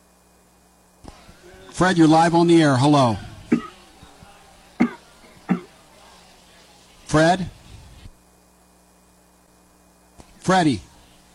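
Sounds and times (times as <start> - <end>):
speech: 1.8 - 3.3, 7.2 - 7.6, 10.5 - 10.9
man coughing over a thin phone line: 3.5 - 3.8, 4.8 - 5.7.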